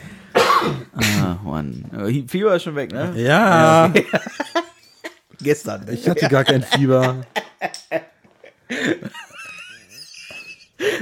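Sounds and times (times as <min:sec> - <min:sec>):
person coughing: 0:00.3 - 0:01.4
speech: 0:01.3 - 0:04.5, 0:05.4 - 0:08.0
laughter: 0:03.4 - 0:05.2, 0:05.9 - 0:11.0.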